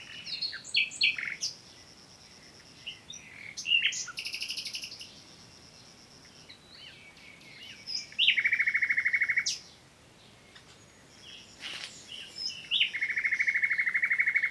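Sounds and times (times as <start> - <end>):
common nightingale Luscinia megarhynchos song: 0.0 - 14.4.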